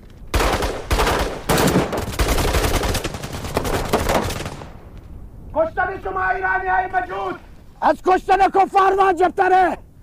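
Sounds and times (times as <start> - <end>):
gunshots in a dramatized shootout: 0.3 - 4.8
speech: 6.0 - 9.9.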